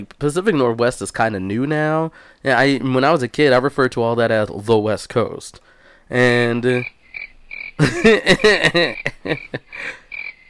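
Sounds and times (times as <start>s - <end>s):
speech: 0.0s - 7.0s, 7.8s - 10.0s
cricket chirping: 6.6s - 10.4s
laughter: 7.8s - 10.0s.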